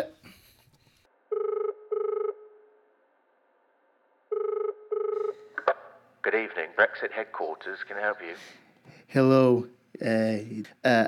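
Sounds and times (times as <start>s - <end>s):
telephone ringing on a recorded phone call: 1.3s - 2.4s, 4.3s - 5.7s
speech: 6.3s - 11.0s.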